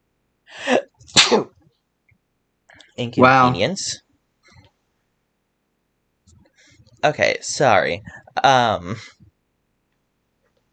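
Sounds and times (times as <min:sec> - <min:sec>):
person sneezing: 0:00.6 - 0:01.5
speech: 0:00.7 - 0:01.6, 0:03.0 - 0:04.0, 0:07.0 - 0:09.2.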